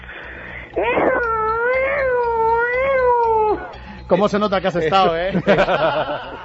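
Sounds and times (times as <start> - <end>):
voice imitating a wailing prison escape alarm: 0.7 - 3.8
speech: 4.1 - 6.4
laughter: 4.7 - 6.4.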